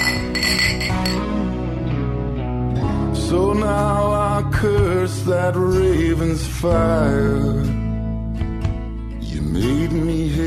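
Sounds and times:
beer glasses clinking in a toast: 0.0s - 1.4s
music: 0.0s - 10.4s
speech: 4.6s - 7.8s, 9.5s - 10.4s.

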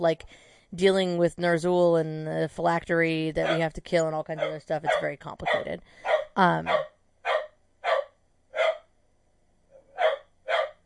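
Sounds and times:
speech: 0.0s - 6.9s
dog barking at a cat: 3.4s - 3.7s, 4.4s - 8.9s, 9.7s - 10.8s.

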